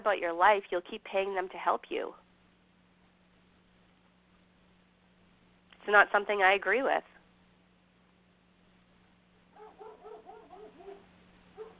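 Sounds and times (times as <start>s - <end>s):
speech: 0.0s - 2.2s, 5.8s - 7.1s
dog short yappy barks: 9.5s - 11.7s.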